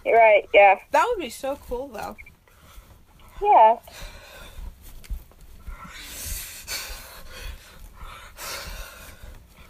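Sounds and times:
speech: 0.2 - 2.3, 3.4 - 4.2
heavy breathing over the phone: 2.4 - 9.6.

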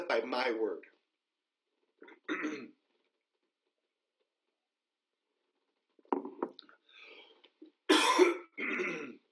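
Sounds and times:
speech: 0.1 - 0.9, 2.0 - 2.8
person coughing harshly: 7.9 - 9.2.

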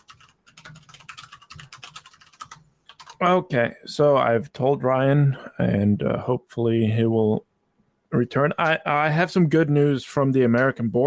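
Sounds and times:
typing on a computer keyboard: 0.0 - 3.2
speech: 3.2 - 7.5, 8.1 - 11.0.

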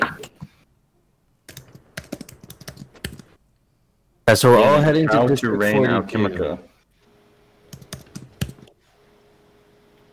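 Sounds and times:
computer keyboard typing: 1.4 - 3.4, 7.7 - 8.7
speech: 4.3 - 6.7.

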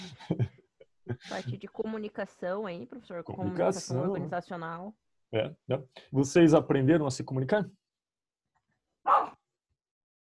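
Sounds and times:
speech: 0.3 - 0.5, 1.3 - 7.8
single sharp dog bark: 9.1 - 9.4.

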